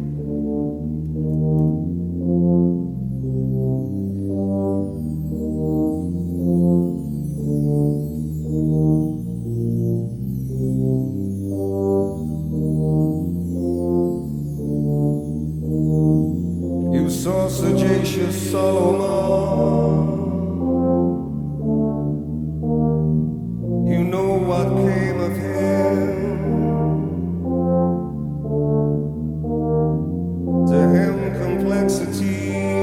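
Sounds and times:
deep sustained organ-like chords: 0.0s - 32.8s
live sung song at a concert: 16.9s - 20.7s, 23.9s - 27.3s, 30.7s - 32.8s.

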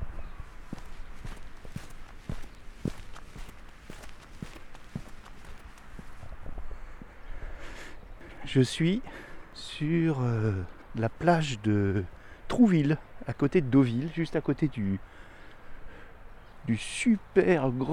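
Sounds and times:
footsteps on wooden seaside boardwalk planks on the beach at Trouville: 0.0s - 7.1s
faint outdoor noise: 0.0s - 17.9s
speech: 8.5s - 15.3s, 16.7s - 17.9s.

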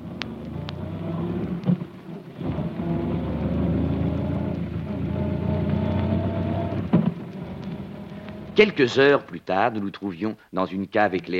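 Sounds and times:
car engine roaring at high speed: 0.0s - 8.7s
sharp knocks and thumps: 1.4s - 2.7s, 6.7s - 7.8s
speech: 8.6s - 11.3s.

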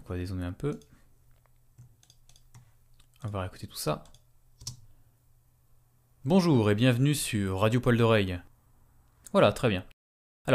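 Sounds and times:
speech: 0.1s - 1.0s, 3.2s - 4.2s, 6.2s - 8.5s, 9.3s - 10.5s
computer keyboard key clicks: 0.7s - 3.4s, 4.0s - 4.8s.

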